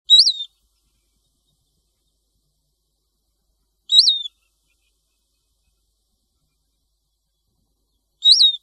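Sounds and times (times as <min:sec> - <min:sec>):
European ground squirrel giving short sharp whistles: 0:00.1 - 0:00.5, 0:03.9 - 0:04.4, 0:08.2 - 0:08.6.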